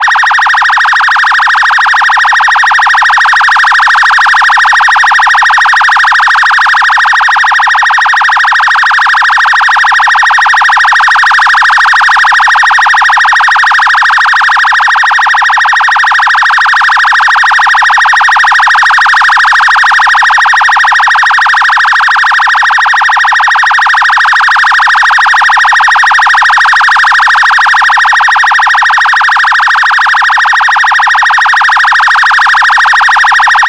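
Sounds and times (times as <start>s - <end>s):
electronic phaser siren: 0.0s - 33.6s.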